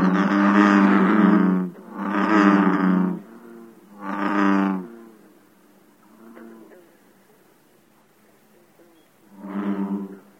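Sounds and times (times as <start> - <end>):
American bullfrog calling: 0.0 - 5.4, 9.2 - 10.3.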